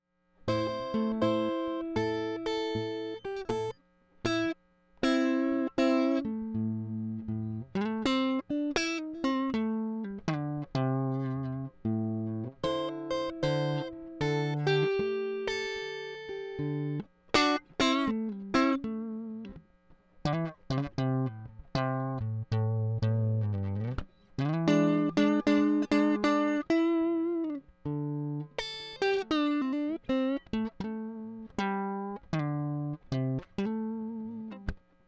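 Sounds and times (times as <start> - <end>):
stock Stratocaster electric guitar playing delta blues: 0.5 - 3.7, 4.3 - 19.6, 20.2 - 34.8.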